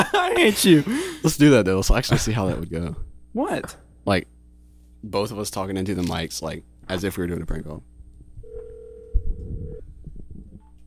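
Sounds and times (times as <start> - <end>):
speech: 0.1 - 4.3, 5.0 - 7.9
steady single-pitched telephone dial tone after hanging up: 8.5 - 9.4.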